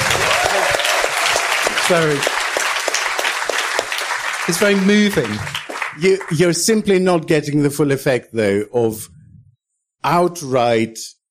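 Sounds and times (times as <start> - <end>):
crowd applauding: 0.0 - 6.8
speech: 1.9 - 2.4, 4.5 - 9.2, 10.0 - 11.2.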